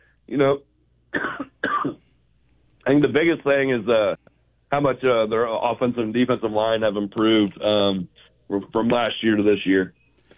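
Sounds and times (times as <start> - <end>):
speech: 0.3 - 2.0, 2.8 - 10.0
man coughing: 1.1 - 2.0.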